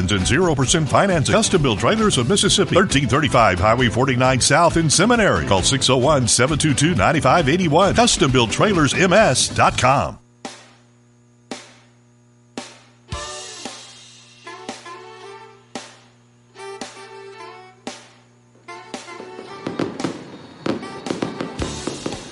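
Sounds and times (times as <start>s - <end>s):
speech: 0.0s - 10.2s
fireworks exploding in grand finale: 17.9s - 22.2s.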